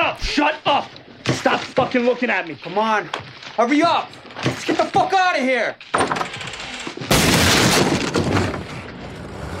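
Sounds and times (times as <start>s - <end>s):
speech: 0.1s - 6.4s
gunshot in a film scene: 7.1s - 8.5s.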